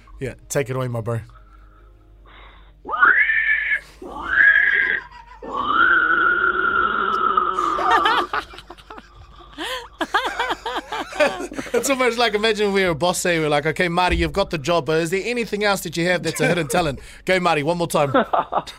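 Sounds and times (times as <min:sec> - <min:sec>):
speech: 0:00.2 - 0:01.4, 0:11.2 - 0:18.7
man imitating pig squeals and grunting snorts: 0:02.9 - 0:08.0
laughter: 0:04.5 - 0:06.0, 0:07.6 - 0:12.4, 0:16.2 - 0:17.0.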